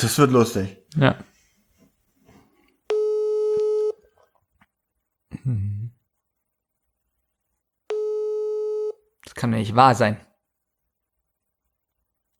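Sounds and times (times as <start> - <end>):
speech: 0.0 - 1.3, 5.4 - 5.8, 9.4 - 10.3
telephone busy tone after a rejected call: 2.9 - 4.0, 7.9 - 9.0.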